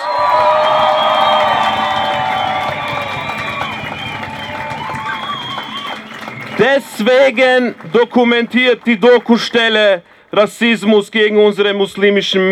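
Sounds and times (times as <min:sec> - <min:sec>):
people shouting: 0:00.0 - 0:07.9
whistles: 0:00.0 - 0:08.3
large crowd at a rally cheering and whooping: 0:00.0 - 0:10.2
speech: 0:06.6 - 0:12.5.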